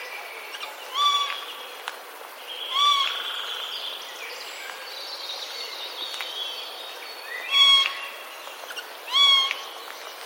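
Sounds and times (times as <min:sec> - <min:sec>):
Eurasian jay calling: 0:00.9 - 0:01.4, 0:02.7 - 0:03.2, 0:09.1 - 0:09.6.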